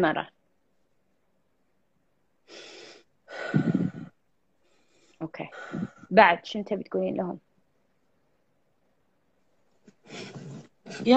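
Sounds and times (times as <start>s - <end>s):
speech: 0.0s - 0.4s, 5.2s - 7.5s, 10.1s - 11.1s
breathing: 2.5s - 6.1s.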